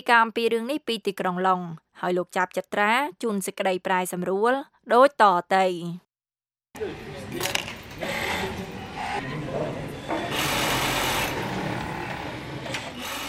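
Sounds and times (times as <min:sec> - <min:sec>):
speech: 0:00.0 - 0:06.0, 0:06.8 - 0:07.6
sewing machines whirring and rattling in a Rwandan textile factory: 0:07.9 - 0:09.2, 0:10.3 - 0:13.2.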